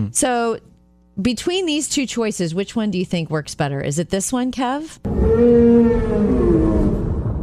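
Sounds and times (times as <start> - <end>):
speech: 0.0 - 6.7
deep underwater rumble: 5.1 - 7.4
long low whale call: 5.1 - 7.4.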